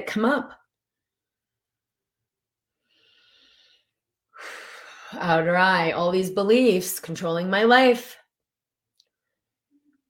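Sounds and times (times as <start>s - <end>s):
speech: 0.0s - 0.6s, 4.4s - 8.2s
person breathing loudly during a tapping exercise: 2.8s - 5.2s.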